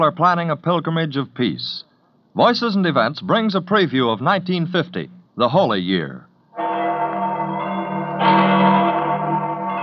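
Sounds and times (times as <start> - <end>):
speech: 0.0 - 6.7
church bells of St. Peter's in Rome ringing in a peal: 6.6 - 9.8.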